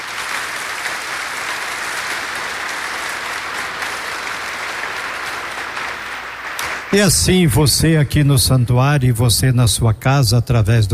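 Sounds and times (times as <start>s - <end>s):
audience applauding at a sanctuary: 0.0s - 8.0s
speech: 6.9s - 10.9s.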